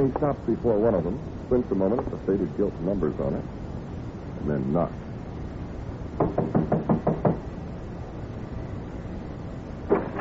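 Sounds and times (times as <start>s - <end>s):
speech: 0.0s - 3.6s, 4.4s - 5.0s
knocking on a warped dark-stained wooden door in a hallway: 6.2s - 7.4s.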